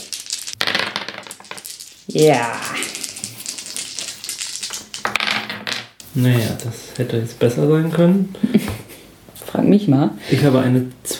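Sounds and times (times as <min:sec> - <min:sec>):
dice tumbling and rattling across a hard tabletop: 0:00.0 - 0:06.0
speech: 0:02.1 - 0:02.8, 0:06.2 - 0:08.8, 0:09.6 - 0:11.1.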